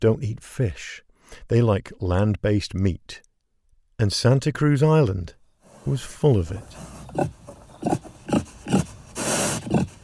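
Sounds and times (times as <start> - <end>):
speech: 0.0 - 3.3, 4.0 - 8.0
feral pig grunting and snorting: 5.9 - 10.0
feral pig squealing: 6.6 - 10.0.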